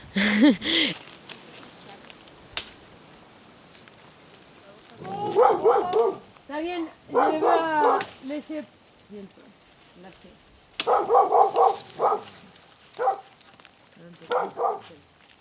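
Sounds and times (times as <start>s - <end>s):
laughter: 0.0s - 1.0s
speech: 0.2s - 1.1s, 8.4s - 11.3s, 14.0s - 15.2s
dogs barking and yipping: 5.1s - 6.2s, 7.1s - 8.0s, 10.8s - 13.4s, 14.3s - 15.0s.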